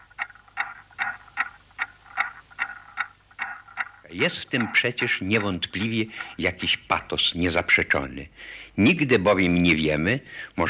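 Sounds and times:
clock ticking: 0:00.0 - 0:08.0
speech: 0:04.1 - 0:10.6.

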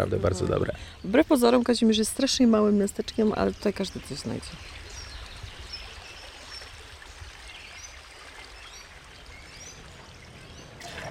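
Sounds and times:
speech: 0:00.0 - 0:04.8
faint outdoor ambience: 0:00.0 - 0:11.1
water pouring from a spout of a town square well: 0:04.2 - 0:11.1.

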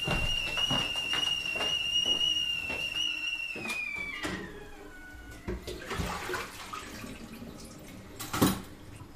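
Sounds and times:
high whistling tap tone: 0:00.0 - 0:05.5
water running from a tap: 0:05.5 - 0:09.0.

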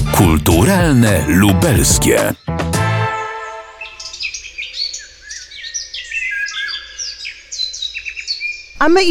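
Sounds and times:
speech: 0:00.2 - 0:02.5, 0:08.8 - 0:09.0
several birds singing and chirping outdoors in spring at an open-air village museum: 0:03.8 - 0:08.8.

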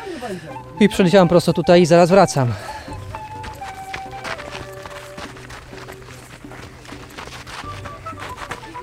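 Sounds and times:
speech: 0:00.2 - 0:02.8
runners' footsteps on dirt field roads: 0:02.4 - 0:08.8.

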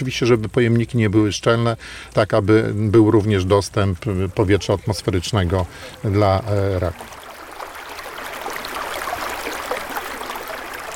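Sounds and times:
speech: 0:00.0 - 0:07.2
flowing river water rushing and gurgling: 0:03.0 - 0:10.9.

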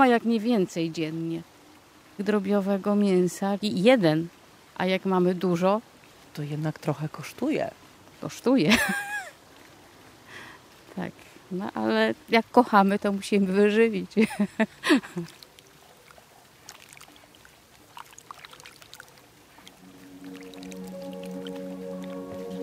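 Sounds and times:
speech: 0:00.0 - 0:01.5, 0:02.2 - 0:09.1, 0:11.0 - 0:15.4
animal moving in a water tub: 0:15.2 - 0:19.8.

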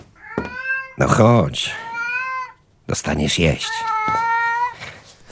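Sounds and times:
cat meowing: 0:00.2 - 0:02.6, 0:03.6 - 0:04.9
speech: 0:01.0 - 0:01.9, 0:02.9 - 0:04.2.

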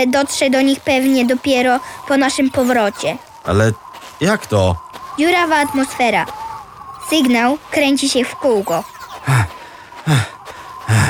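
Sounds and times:
speech: 0:00.0 - 0:06.4, 0:07.1 - 0:09.4
person panting heavily from walking too fast: 0:09.3 - 0:11.0.

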